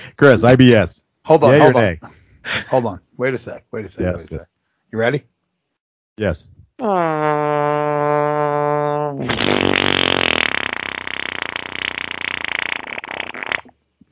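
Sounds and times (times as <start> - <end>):
speech: 0.2 - 5.3, 6.2 - 7.8, 9.2 - 9.7
long loud fart: 6.8 - 13.8.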